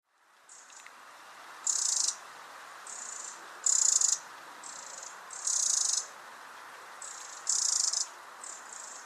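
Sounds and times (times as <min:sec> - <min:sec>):
steady hiss: 0:00.1 - 0:09.0
Troglodytes troglodytes Eurasian wren giving buzzy rattles: 0:01.6 - 0:02.2, 0:02.9 - 0:06.1, 0:07.0 - 0:09.0.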